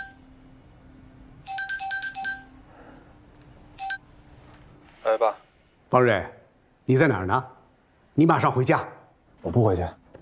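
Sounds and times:
phone ringtone with trilling electronic tones: 0:00.0 - 0:00.2, 0:01.4 - 0:02.6, 0:03.8 - 0:04.0
speech: 0:05.1 - 0:07.6, 0:08.2 - 0:10.0.

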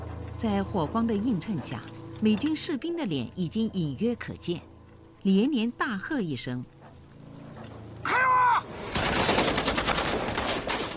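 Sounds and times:
speech: 0:00.4 - 0:06.7
grenade and grenade-launcher explosions in a night battle: 0:08.8 - 0:10.9
dense gunfire in a night battle: 0:08.9 - 0:10.9.

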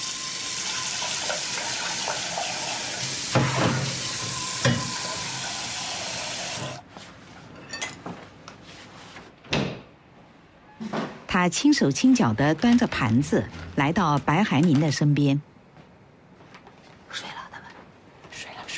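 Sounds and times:
scallion oil chicken frying in a kitchen: 0:00.0 - 0:06.8
speech: 0:11.4 - 0:15.5.

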